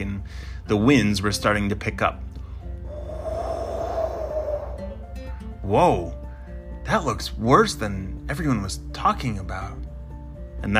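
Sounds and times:
speech: 0:00.2 - 0:02.3, 0:05.7 - 0:06.2, 0:06.9 - 0:09.8
woman yawning on her way home: 0:02.9 - 0:05.0.

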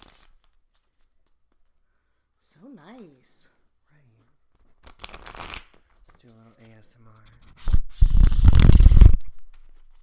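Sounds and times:
deck of tarot cards being shuffled: 0:00.0 - 0:01.8, 0:04.5 - 0:10.0
speech: 0:02.6 - 0:03.5, 0:06.2 - 0:07.8.

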